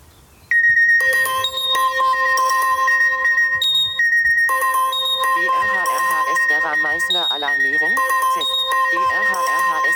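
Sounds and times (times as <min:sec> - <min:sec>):
smartphone emergency alert tone from an alerting app: 0:00.5 - 0:09.9.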